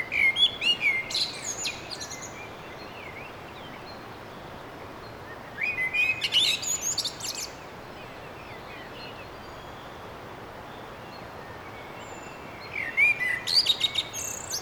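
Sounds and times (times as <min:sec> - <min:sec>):
common blackbird song: 0:00.0 - 0:14.6
steady background hiss: 0:00.0 - 0:14.6.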